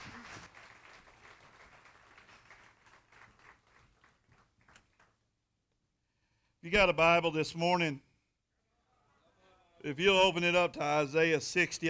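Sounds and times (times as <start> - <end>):
audience applause for a band: 0.0 - 5.1
speech: 6.6 - 8.1, 9.8 - 11.8.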